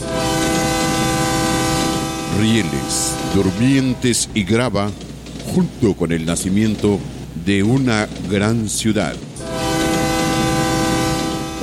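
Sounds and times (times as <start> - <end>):
train horn blaring: 0.0 - 5.8, 9.4 - 11.6
train rolling on rails: 0.0 - 11.6
speech: 2.4 - 9.6.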